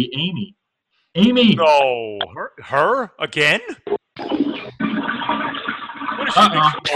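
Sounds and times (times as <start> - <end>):
voices: 0.0 - 0.5, 1.2 - 4.7, 6.2 - 6.9
speech: 0.0 - 0.6, 1.2 - 4.4, 6.3 - 6.9
toilet flushing: 4.2 - 6.9.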